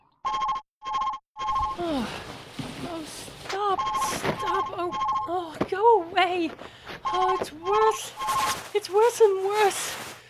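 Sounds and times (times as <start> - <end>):
telephone ringing: 0.2 - 1.8, 3.8 - 8.6
speech: 5.3 - 10.0.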